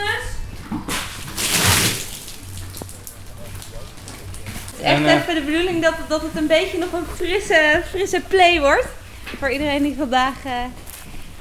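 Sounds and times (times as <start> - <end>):
water thrown onto a ceiling, walls and floor to rinse them: 0.9 - 4.8
speech: 4.8 - 10.8.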